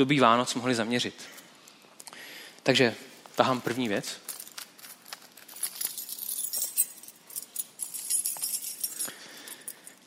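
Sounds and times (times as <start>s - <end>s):
speech: 0.0s - 1.4s, 2.6s - 4.2s
bunch of keys jangling and clinking: 4.2s - 10.0s.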